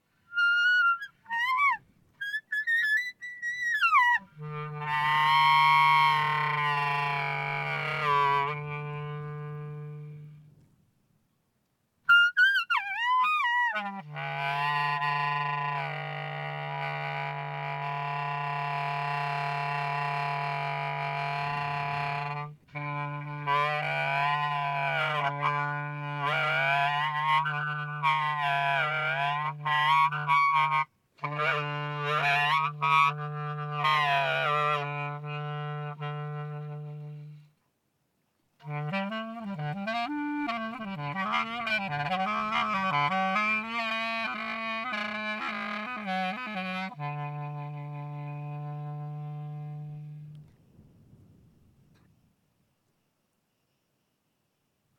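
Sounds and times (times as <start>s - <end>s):
wind: 0.0s - 54.9s.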